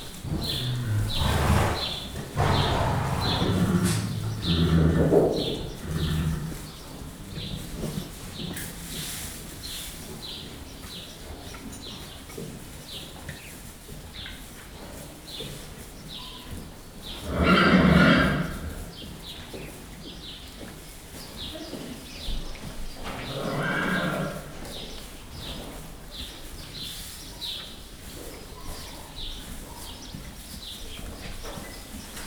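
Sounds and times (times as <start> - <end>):
distant horse neighing in a horse stable: 0.2 - 6.8, 17.3 - 18.8, 23.2 - 24.5.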